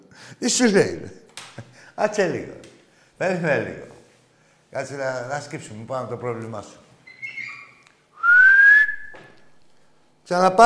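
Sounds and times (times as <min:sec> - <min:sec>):
speech: 0:00.2 - 0:01.2, 0:02.0 - 0:03.9, 0:04.7 - 0:06.8, 0:10.3 - 0:10.6
person whistling: 0:08.2 - 0:09.4.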